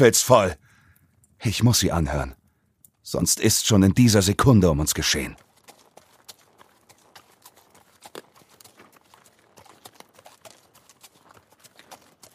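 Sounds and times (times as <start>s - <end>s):
speech: 0.0s - 0.6s, 1.4s - 2.4s, 3.1s - 5.5s
horse hooves clip-clopping on a winding road below a castle: 4.8s - 12.3s.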